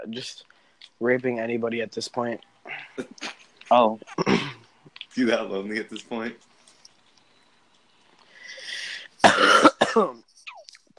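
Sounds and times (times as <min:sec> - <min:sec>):
speech: 0:00.0 - 0:04.4, 0:05.2 - 0:06.5, 0:10.0 - 0:10.3
harsh rasping coughs: 0:04.2 - 0:04.7, 0:09.2 - 0:10.2
breathy intake of air: 0:08.3 - 0:09.2.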